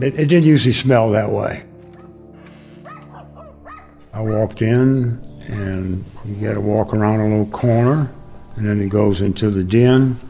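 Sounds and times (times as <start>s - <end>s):
speech: 0.0s - 1.7s, 4.2s - 10.2s
small wiener dogs yapping inside a house: 1.9s - 2.2s, 2.8s - 4.5s.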